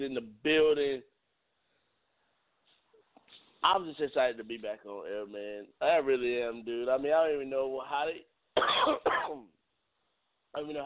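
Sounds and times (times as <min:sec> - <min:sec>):
speech: 0:00.0 - 0:01.1, 0:03.6 - 0:09.6, 0:10.5 - 0:10.8
person coughing: 0:08.6 - 0:09.5.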